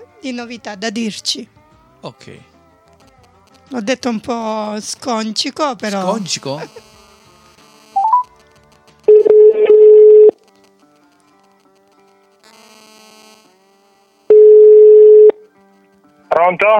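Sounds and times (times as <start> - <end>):
speech: 0.2 - 2.5, 3.7 - 6.9, 16.5 - 16.7
telephone dialing tones: 8.0 - 8.2, 9.1 - 10.3, 14.3 - 15.4.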